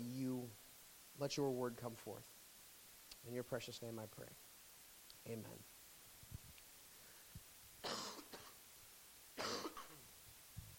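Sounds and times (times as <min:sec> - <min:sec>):
speech: 0:01.2 - 0:02.4, 0:03.2 - 0:04.5, 0:05.2 - 0:05.7
faint breathing: 0:06.9 - 0:07.5
person coughing harshly: 0:07.8 - 0:08.6, 0:09.4 - 0:10.0.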